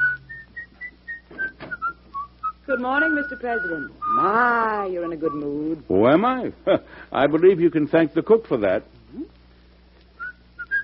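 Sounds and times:
person whistling a tune: 0.0 - 5.4, 10.2 - 10.8
speech: 2.7 - 9.3.

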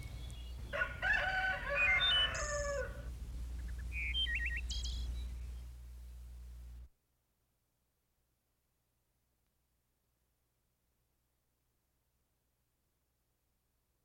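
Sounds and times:
steady low hum: 0.0 - 6.9
rooster crowing in the morning: 0.7 - 3.1
faint bird chirps: 1.7 - 2.8, 3.6 - 6.2.

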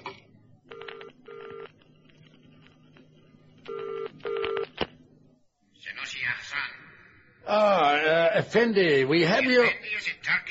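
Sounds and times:
telephone on a direct line to a train ringing in buzzy tones: 0.7 - 1.8, 3.7 - 4.7
speech: 8.4 - 10.4.

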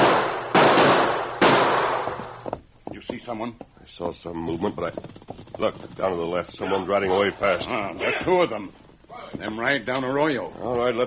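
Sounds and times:
gunshots from an arroyo: 0.0 - 2.5
speech: 3.2 - 11.0.

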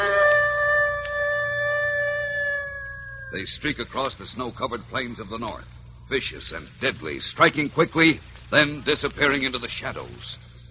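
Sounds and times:
wolf howling: 0.0 - 3.6
speech: 3.3 - 10.5.

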